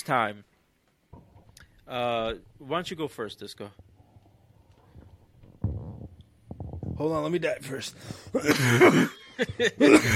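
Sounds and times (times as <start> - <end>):
speech: 0.0 - 0.5, 1.9 - 3.9, 7.0 - 10.1
person coughing with a strained raspy hack: 8.4 - 9.2, 9.8 - 10.1.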